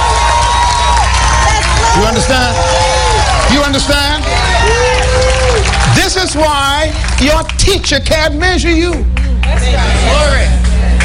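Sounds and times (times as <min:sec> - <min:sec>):
large crowd screaming and cheering: 0:00.0 - 0:07.6
large crowd clapping loudly: 0:00.0 - 0:11.0
speech: 0:02.0 - 0:02.8, 0:03.4 - 0:04.4, 0:05.5 - 0:10.6.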